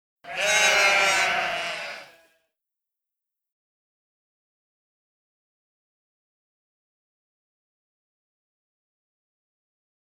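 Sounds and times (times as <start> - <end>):
sheep baaing: 0.2 - 2.4.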